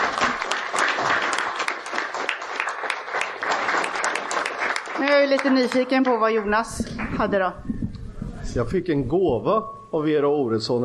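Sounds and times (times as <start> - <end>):
applause from a small group: 0.0 - 7.3
speech: 5.2 - 7.8, 8.5 - 10.8.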